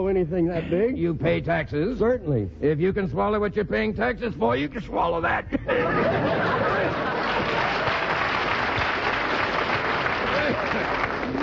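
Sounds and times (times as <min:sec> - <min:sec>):
speech: 0:00.0 - 0:07.0
laughter: 0:04.7 - 0:08.6, 0:10.2 - 0:11.4
sustained applause from a large audience: 0:06.3 - 0:11.4.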